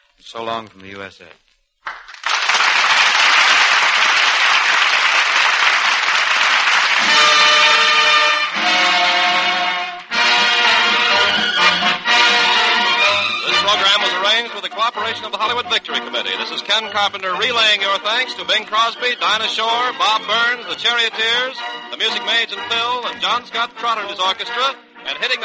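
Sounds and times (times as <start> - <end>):
speech: 0.2 - 1.5, 14.2 - 25.4
loud dense applause from a large studio audience: 1.9 - 14.2
band playing: 6.6 - 25.4.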